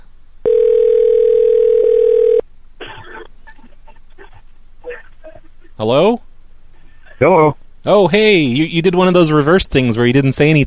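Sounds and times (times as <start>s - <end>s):
telephone dial tone after caller hangs up: 0.4s - 2.4s
speech: 5.8s - 6.3s, 7.2s - 10.6s.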